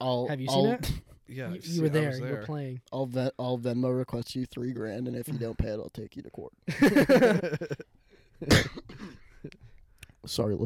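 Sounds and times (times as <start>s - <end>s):
speech: 0.0s - 8.7s, 10.3s - 10.6s
laughter: 6.7s - 7.9s
person coughing into a microphone: 8.5s - 9.3s.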